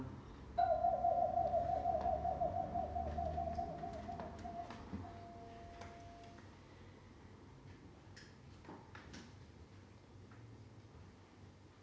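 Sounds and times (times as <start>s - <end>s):
owl hooting at night: 0.6s - 5.6s.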